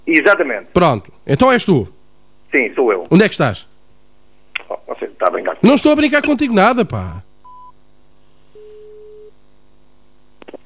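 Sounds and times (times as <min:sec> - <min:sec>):
speech: 0:00.1 - 0:03.7, 0:04.6 - 0:07.3
telephone line tone after a call drops: 0:08.5 - 0:09.4.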